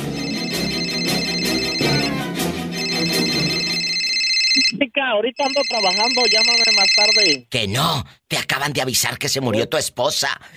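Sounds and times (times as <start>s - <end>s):
cell phone ringing with a bright melodic electronic ringtone: 0.0s - 4.8s, 5.4s - 7.4s
speech: 5.1s - 10.5s.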